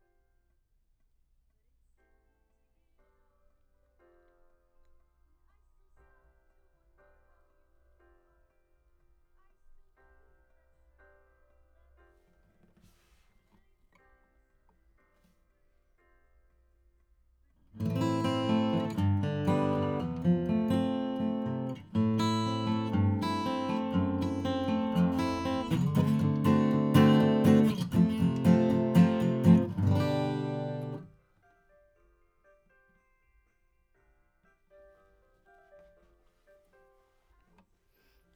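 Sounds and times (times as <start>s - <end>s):
acoustic guitar: 17.8s - 31.2s.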